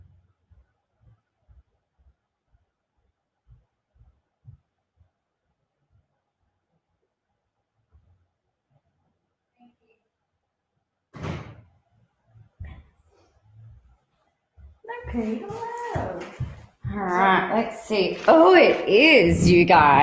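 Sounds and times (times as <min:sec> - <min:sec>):
door opening and banging shut: 0:11.2 - 0:11.7
soft footsteps thudding: 0:14.6 - 0:20.0
speech: 0:15.1 - 0:16.0, 0:17.0 - 0:20.0.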